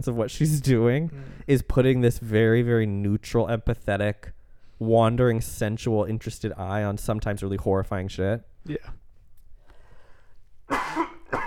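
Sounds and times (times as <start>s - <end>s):
speech: 0.0s - 9.0s
person coughing: 10.7s - 11.4s.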